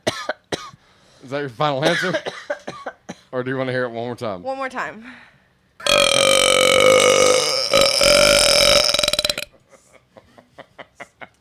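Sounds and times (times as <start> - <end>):
speech: 1.2 - 2.4, 3.3 - 5.3
long loud burp after drinking Sprite: 5.8 - 9.5.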